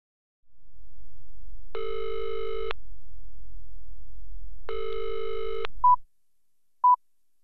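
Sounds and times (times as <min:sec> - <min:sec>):
low telephone line hum: 0:00.5 - 0:04.9
telephone ringing: 0:01.8 - 0:02.7, 0:04.7 - 0:05.7.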